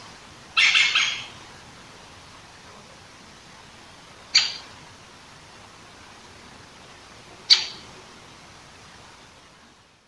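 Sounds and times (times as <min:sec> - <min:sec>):
Great Spotted Woodpecker Dendrocopos major harsh scratchy burst: 0:00.6 - 0:01.4, 0:04.3 - 0:04.6
Great Spotted Woodpecker Dendrocopos major sharp kik calls: 0:00.6 - 0:01.4, 0:04.3 - 0:04.7, 0:07.5 - 0:07.9.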